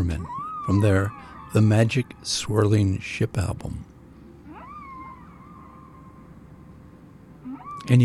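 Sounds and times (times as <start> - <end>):
whale call: 0.0 - 2.3, 4.4 - 6.8, 7.4 - 8.0
speech: 0.0 - 3.9, 7.9 - 8.0.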